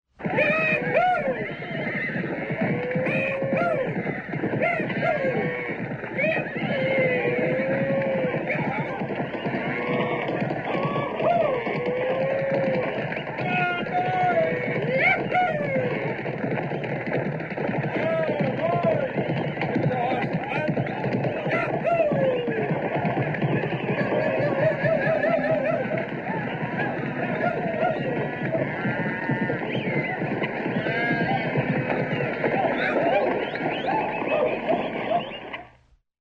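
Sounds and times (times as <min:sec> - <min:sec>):
cattle drive: 0:00.2 - 0:36.0
laughter: 0:23.7 - 0:29.0, 0:31.2 - 0:35.5.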